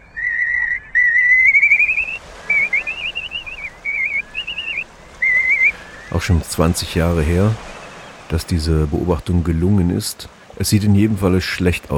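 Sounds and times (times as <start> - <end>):
slender-billed curlew whistling calls: 0.0 - 8.4
speech: 6.1 - 7.7, 8.3 - 11.9.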